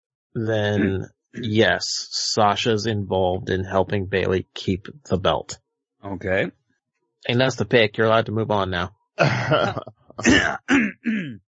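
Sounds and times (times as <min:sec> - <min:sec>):
throat clearing: 0:00.4 - 0:01.8, 0:09.2 - 0:11.4
laughter: 0:00.4 - 0:05.4, 0:09.2 - 0:10.6
speech: 0:00.4 - 0:06.6, 0:07.2 - 0:11.4
person with a nasty cough coughing: 0:00.8 - 0:01.6, 0:09.2 - 0:11.4.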